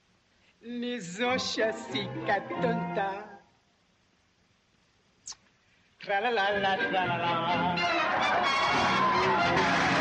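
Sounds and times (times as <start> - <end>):
speech: 0.6 - 3.3, 6.0 - 9.9
man singing a comic nonsense song in gibberish lyrics: 0.7 - 3.5, 6.0 - 8.1.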